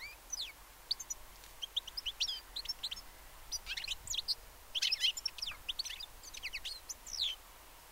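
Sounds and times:
European goldfinch Carduelis carduelis twittering: 0.0s - 7.9s
hissy background noise: 0.0s - 7.9s.

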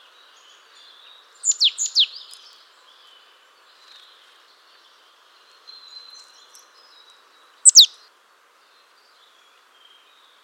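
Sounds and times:
Marsh Tit Poecile palustris calling: 7.7s - 7.9s.

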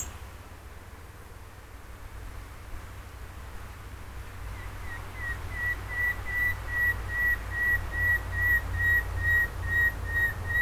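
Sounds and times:
common nightingale Luscinia megarhynchos song: 0.0s - 0.3s, 4.4s - 10.6s.

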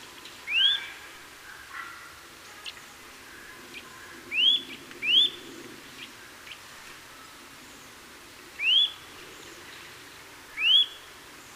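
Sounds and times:
quiet background hiss: 0.0s - 11.5s
Eurasian nuthatch Sitta europaea rising whistled calls: 0.5s - 1.0s, 4.3s - 5.5s, 8.6s - 9.1s, 10.6s - 11.1s.

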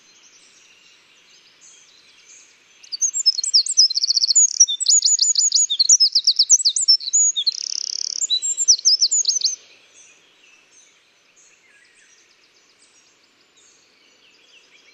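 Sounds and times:
Eurasian wren singing: 1.4s - 10.6s.

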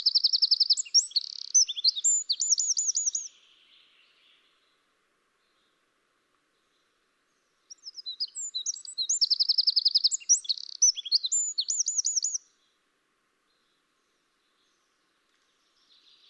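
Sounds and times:
Eurasian wren Troglodytes troglodytes singing sharp high notes and rattling trills: 0.0s - 4.6s, 6.6s - 12.7s.

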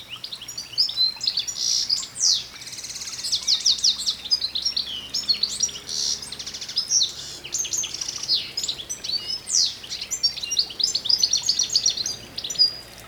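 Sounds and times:
European goldfinch twittering with buzzy notes: 0.1s - 13.0s.

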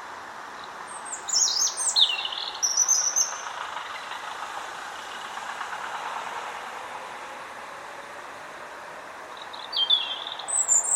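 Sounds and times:
steady background noise: 0.0s - 10.9s
European robin Erithacus rubecula high sliding whistles and trills: 0.9s - 3.4s, 9.4s - 10.9s.

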